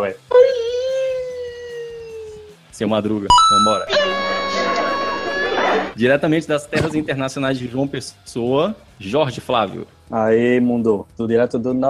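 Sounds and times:
voice imitating a character crying with a high-pitched wail: 0.3 - 2.6, 3.8 - 6.0
speech: 2.8 - 4.2, 5.8 - 11.8.

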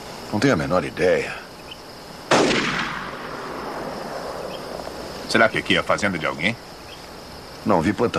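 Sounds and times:
speech: 0.3 - 1.4, 5.3 - 6.7, 7.6 - 8.1
single loud gunshot fired toward people near a farm: 2.3 - 4.5.

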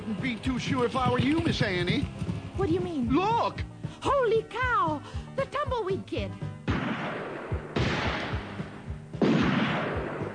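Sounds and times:
speech: 0.1 - 7.4
gunshots with a bullet striking a hat in a Western-style scene: 6.6 - 10.3.

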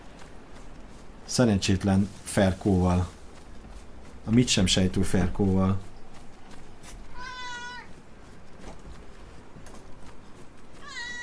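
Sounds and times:
steady rough noise: 0.0 - 11.2
speech: 1.3 - 3.2, 4.2 - 5.9
cat meowing: 7.1 - 7.9, 10.8 - 11.2.

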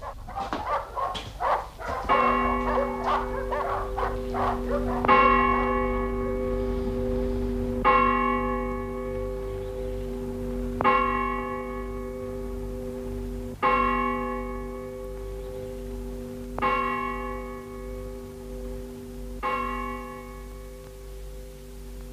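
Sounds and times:
dogs barking: 0.0 - 6.4
deep bell tolling: 0.0 - 22.1.

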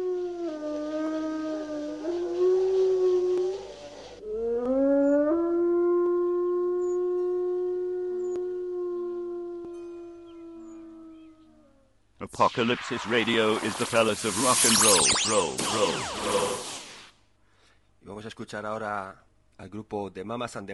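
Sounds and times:
wolves howling: 0.0 - 11.8
speech: 12.3 - 16.6, 18.4 - 20.7.

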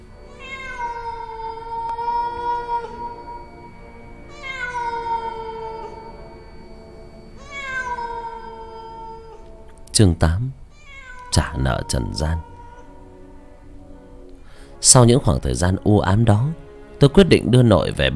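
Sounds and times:
cat yowling on a rooftop at night: 0.2 - 3.7, 4.3 - 6.4, 7.3 - 9.6, 10.7 - 13.2
speech: 10.0 - 10.6, 11.4 - 12.5, 14.8 - 18.1.

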